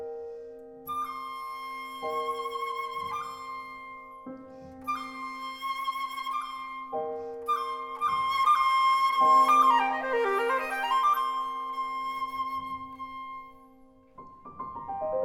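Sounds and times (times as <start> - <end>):
pan flute: 0.8 - 15.1.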